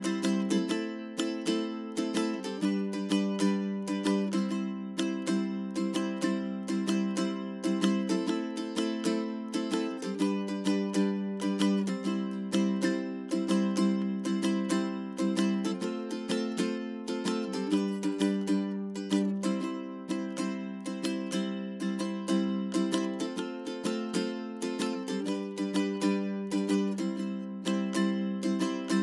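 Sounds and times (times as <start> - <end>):
ukulele: 0.0 - 29.0.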